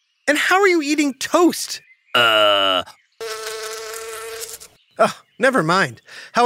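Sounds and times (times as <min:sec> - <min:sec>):
speech: 0:00.3 - 0:03.0, 0:05.0 - 0:06.4
bee buzzing: 0:02.2 - 0:04.8.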